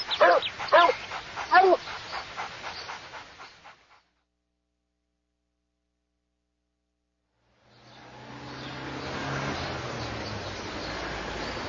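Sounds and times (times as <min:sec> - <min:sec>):
outdoor noise: 0:00.0 - 0:05.6, 0:06.7 - 0:11.6
dog barking: 0:00.1 - 0:01.8.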